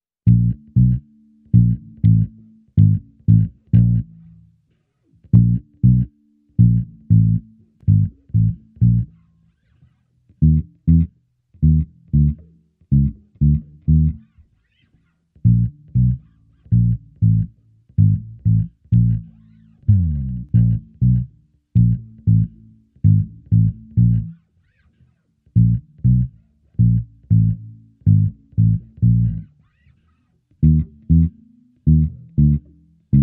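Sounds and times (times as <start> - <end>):
sneaky funk bass line: 0.2 - 4.4, 5.2 - 9.3, 10.3 - 14.4, 15.4 - 24.9, 25.5 - 29.9, 30.6 - 33.2.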